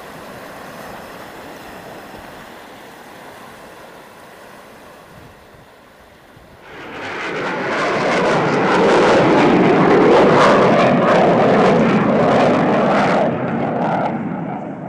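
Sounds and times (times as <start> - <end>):
fighter jets roaring near an airport: 6.5 - 14.8.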